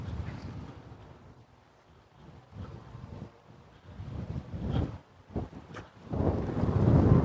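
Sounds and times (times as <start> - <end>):
strong chilly wind blowing on a morning walk: 0.0 - 7.2.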